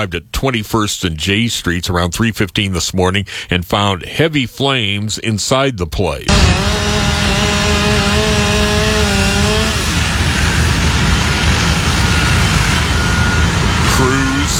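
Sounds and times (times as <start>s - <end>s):
speech: 0.0s - 7.1s
power saw cutting through house roofing: 6.3s - 14.5s.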